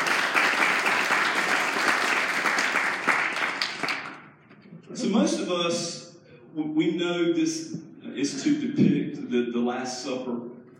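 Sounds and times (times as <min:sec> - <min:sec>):
crowd applauding: 0:00.0 - 0:04.3
speech: 0:05.1 - 0:06.0, 0:06.6 - 0:10.5.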